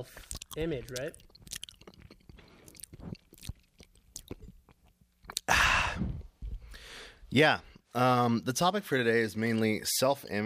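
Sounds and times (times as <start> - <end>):
speech: 0.0 - 1.3, 7.3 - 10.4
wet clicks and crunches from chewing boba: 0.0 - 5.5
person chewing boba: 0.0 - 6.8.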